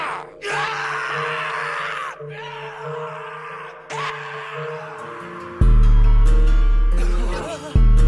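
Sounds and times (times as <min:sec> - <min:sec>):
person screaming: 0:00.0 - 0:06.1
laughter: 0:07.0 - 0:07.9.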